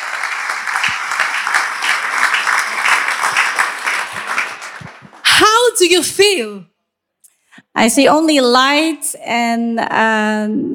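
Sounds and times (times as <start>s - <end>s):
crowd applauding: 0.0s - 5.5s
speech: 5.8s - 6.7s, 7.8s - 10.7s.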